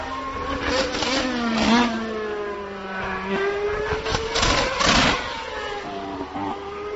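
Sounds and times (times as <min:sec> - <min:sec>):
Formula 1 car engine whining under braking: 0:00.0 - 0:06.9
Formula 1 car exhaust backfiring under braking: 0:03.8 - 0:05.4.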